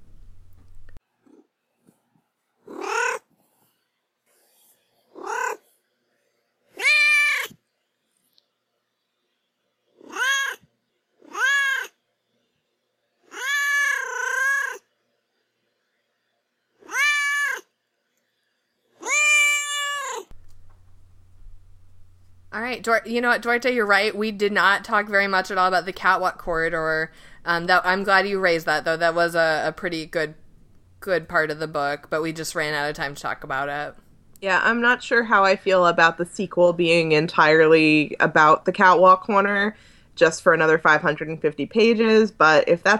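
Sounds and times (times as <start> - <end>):
domestic cat meowing: 2.7 - 3.2, 5.2 - 5.6, 6.8 - 7.6, 10.0 - 10.6, 11.2 - 11.9, 13.3 - 14.8, 16.8 - 17.6, 19.0 - 20.3
speech: 22.8 - 30.4, 31.0 - 42.9.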